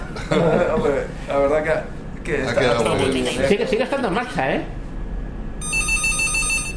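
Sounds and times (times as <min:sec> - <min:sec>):
laughter: 0:00.0 - 0:01.1
speech: 0:00.2 - 0:04.8
old gondola-style telephone bell ringing: 0:05.6 - 0:06.7.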